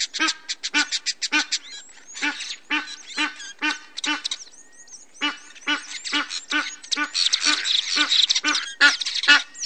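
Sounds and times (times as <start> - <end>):
Egyptian goose giving rasping croaking honks: 2.2 - 4.4, 5.2 - 9.5.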